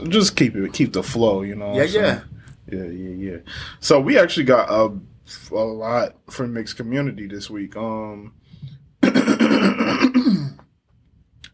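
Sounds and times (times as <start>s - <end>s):
speech: 0.0s - 10.4s
harsh throat clearing turning into coughing: 9.0s - 10.7s.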